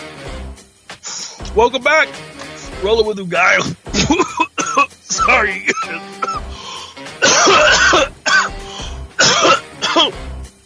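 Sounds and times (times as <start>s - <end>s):
speech: 1.6s - 4.4s, 5.3s - 6.2s
harsh raspy coughing: 3.6s - 10.2s.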